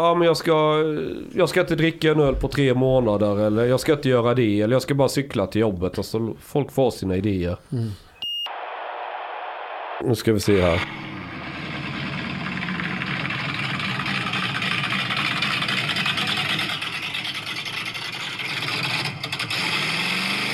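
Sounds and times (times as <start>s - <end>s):
speech: 0.0s - 8.0s, 10.0s - 11.2s
self-built engine running with rough idle: 10.8s - 20.4s.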